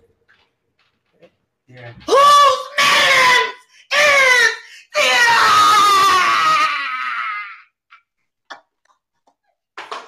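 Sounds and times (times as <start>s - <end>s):
woman screaming in a screaming competition: 2.1s - 7.7s.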